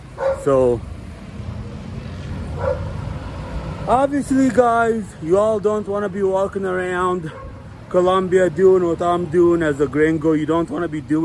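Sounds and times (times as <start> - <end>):
dog barking on a street in Colombia: 0.2 - 0.5, 2.6 - 3.0, 7.3 - 7.6
speech: 0.4 - 0.9, 3.9 - 11.2.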